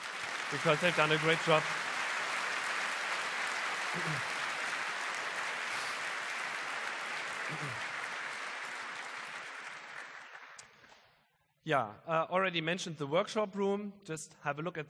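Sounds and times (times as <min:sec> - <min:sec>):
room full of people applauding: 0:00.0 - 0:11.0
speech: 0:00.5 - 0:01.9, 0:03.9 - 0:04.3, 0:07.5 - 0:07.9, 0:11.7 - 0:14.8.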